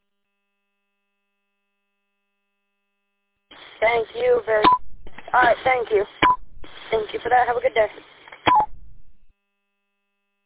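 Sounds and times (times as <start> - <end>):
speech: 3.8 - 6.2, 6.9 - 8.1
radio roger beep closing a transmission on an amateur repeater network: 4.6 - 7.0, 8.5 - 8.8.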